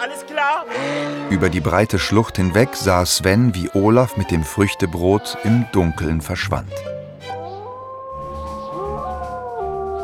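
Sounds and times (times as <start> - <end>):
speech: 0.0 - 7.0
dogs howling in a dark forest: 7.4 - 10.0.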